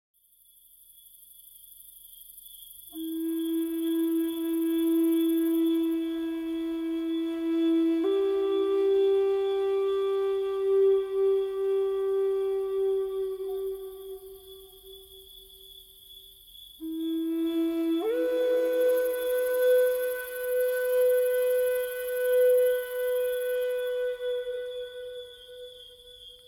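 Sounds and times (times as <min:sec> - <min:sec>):
crickets chirping: 0:00.2 - 0:26.4
flute: 0:02.9 - 0:15.3, 0:16.8 - 0:26.4.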